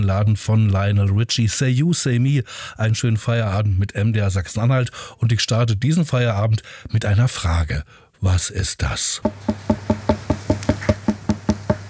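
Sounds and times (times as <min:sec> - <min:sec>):
speech: 0:00.0 - 0:09.8
bright hollow knocks with a resonant woody ring: 0:09.2 - 0:11.8.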